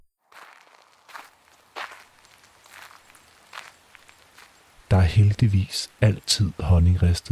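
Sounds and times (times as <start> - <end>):
footsteps in new yellow rubber boots squelching across wet ground: 0.3 - 4.8
soft constant hiss of calm rain: 0.7 - 7.3
speech: 4.9 - 7.3.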